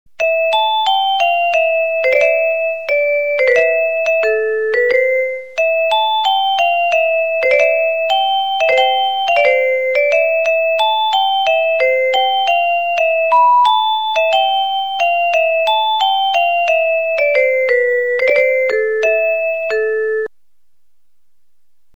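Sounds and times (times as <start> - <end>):
musical bell ringtone from a broadcast room bell system: 0.2 - 20.3.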